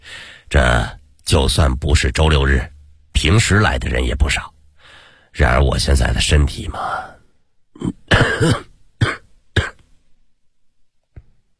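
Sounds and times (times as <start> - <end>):
speech: 0.5 - 4.5, 5.4 - 7.2, 7.8 - 8.7
man bent over coughing: 7.8 - 9.8.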